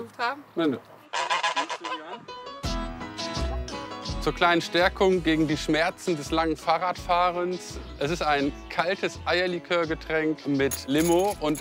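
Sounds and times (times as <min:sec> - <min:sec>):
speech: 0:00.1 - 0:01.0, 0:04.2 - 0:11.5
gander and three hens cackling and honking on their home ground: 0:01.1 - 0:02.4.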